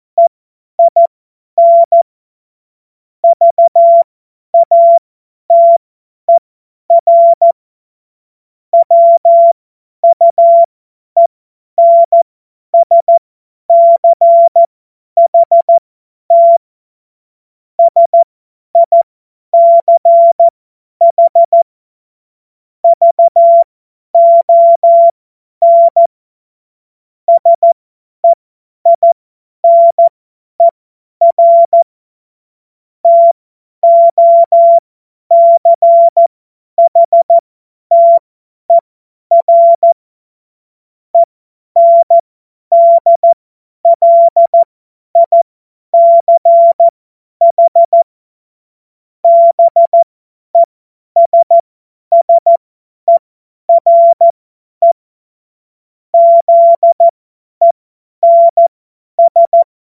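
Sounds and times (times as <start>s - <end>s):
morse code beeps: 0.2s - 2.0s, 3.3s - 7.6s, 8.8s - 10.7s, 11.8s - 12.2s, 12.8s - 16.6s, 17.8s - 18.2s, 18.8s - 19.0s, 19.6s - 21.7s, 22.8s - 26.1s, 27.3s - 31.8s, 33.0s - 40.0s, 41.2s - 45.4s, 46.0s - 48.1s, 49.2s - 55.0s, 56.2s - 59.7s.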